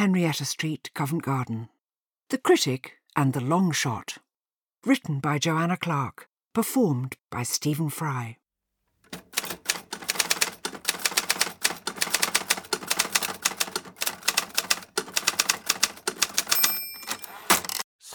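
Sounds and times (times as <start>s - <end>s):
speech: 0.0s - 4.2s, 4.8s - 8.4s
typewriter typing: 9.0s - 17.9s.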